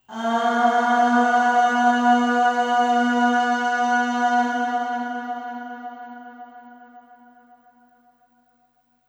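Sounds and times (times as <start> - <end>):
voice singing long aah with long reverb: 0.0 - 7.1.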